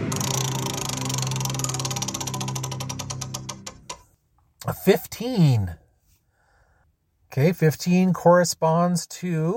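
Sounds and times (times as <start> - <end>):
game show prize wheel spinning with pointer clicking: 0.1 - 4.1
speech: 4.9 - 5.8, 7.3 - 9.5.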